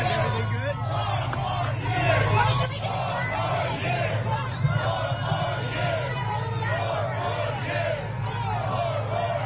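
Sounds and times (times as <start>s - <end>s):
low rumble of city traffic: 0.0s - 9.4s
outdoor crowd of tens of thousands cheering: 0.0s - 9.4s.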